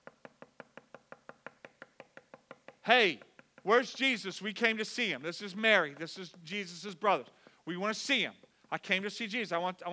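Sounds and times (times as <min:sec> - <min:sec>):
knocking on a door or wooden surface: 0:00.0 - 0:03.7
speech: 0:02.9 - 0:09.9.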